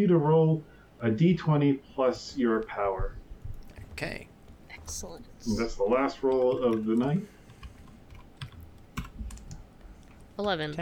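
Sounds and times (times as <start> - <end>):
speech: 0.0 - 3.2, 4.0 - 4.3, 4.9 - 7.4, 10.4 - 10.8
keyboard typing: 3.5 - 10.6.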